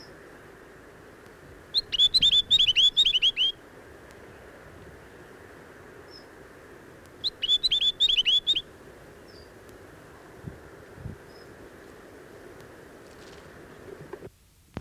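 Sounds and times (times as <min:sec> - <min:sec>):
background noise: 0:00.0 - 0:14.7
Chatham Island tomtit whistling song: 0:01.8 - 0:03.6, 0:07.2 - 0:08.7.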